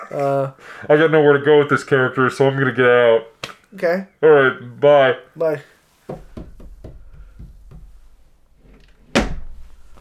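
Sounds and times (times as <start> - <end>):
speech: 0.1 - 6.2
knocks and thuds: 6.1 - 8.2, 9.0 - 9.7
door slamming shut: 8.8 - 9.6.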